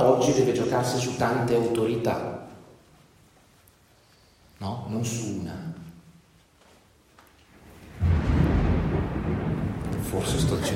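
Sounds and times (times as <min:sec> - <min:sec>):
speech: 0:00.2 - 0:02.5, 0:04.6 - 0:05.8, 0:10.1 - 0:10.7
thunder rumbling: 0:07.6 - 0:10.7.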